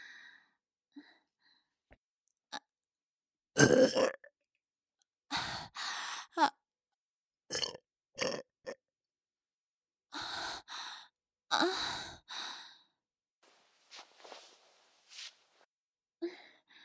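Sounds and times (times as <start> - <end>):
breathing: 0.0 - 1.8, 5.3 - 6.3, 10.2 - 11.1, 11.7 - 13.0, 16.2 - 16.8
person burping: 3.6 - 4.2, 7.5 - 8.4.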